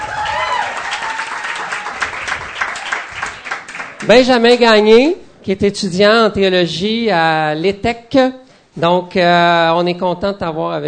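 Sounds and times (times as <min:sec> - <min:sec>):
person whooping: 0:00.0 - 0:02.1
speech: 0:04.0 - 0:10.8.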